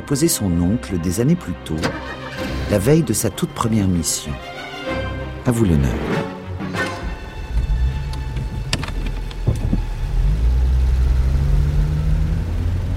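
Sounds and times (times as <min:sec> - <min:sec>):
speech: 0:00.0 - 0:04.7, 0:05.5 - 0:06.4
taxi engine and road rumble while driving slowly: 0:07.0 - 0:12.9.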